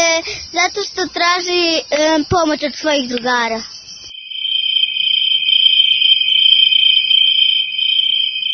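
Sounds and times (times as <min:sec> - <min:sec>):
cricket chirping: 0:00.0 - 0:08.5
speech: 0:00.2 - 0:03.8.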